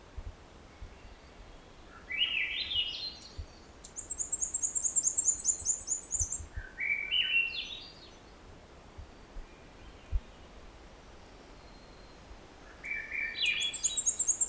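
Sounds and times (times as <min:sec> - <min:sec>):
Black-and-white Warbler singing: 0:00.8 - 0:08.2, 0:11.6 - 0:14.4.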